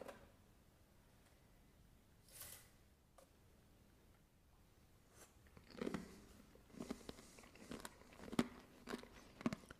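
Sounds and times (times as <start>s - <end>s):
crunchy chewing of dry orange-flavored cereal: 5.4s - 9.7s.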